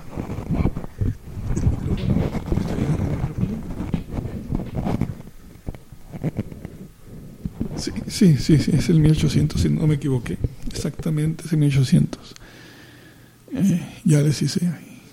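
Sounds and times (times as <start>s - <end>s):
rubbing and scraping against a microphone's foam windscreen: 0.0s - 8.8s
speech: 7.8s - 12.4s, 13.6s - 14.8s.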